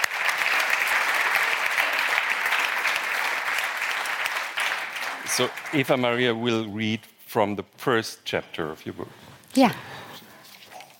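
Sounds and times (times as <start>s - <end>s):
audience applause: 0.0s - 6.5s
speech: 5.4s - 10.0s.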